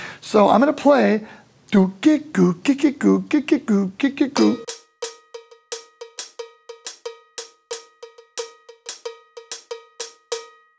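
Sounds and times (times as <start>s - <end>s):
speech: 0.3s - 4.7s
drum kit cowbell playing Afro-Cuban groove: 4.4s - 10.7s.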